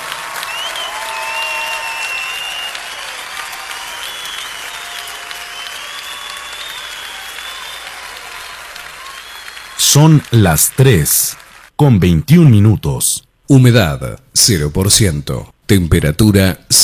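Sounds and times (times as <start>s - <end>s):
faint cheers: 0.0s - 11.7s
large crowd applauding: 0.0s - 11.8s
speech: 9.9s - 16.8s.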